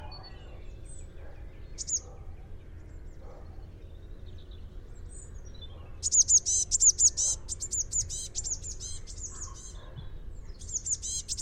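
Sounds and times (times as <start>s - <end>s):
Eurasian blue tit chattering calls: 0.0s - 9.8s, 10.4s - 11.4s.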